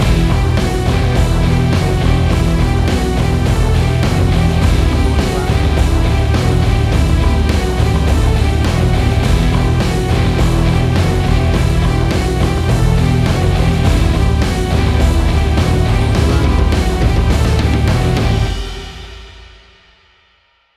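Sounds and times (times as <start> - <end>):
big epic heavy metal action music: 0.0 - 19.4.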